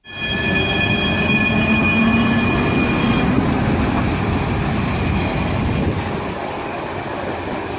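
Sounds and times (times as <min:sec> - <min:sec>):
high metallic tram wheel squeals: 0:00.0 - 0:06.0
tram rumbling along its rails: 0:00.0 - 0:07.7.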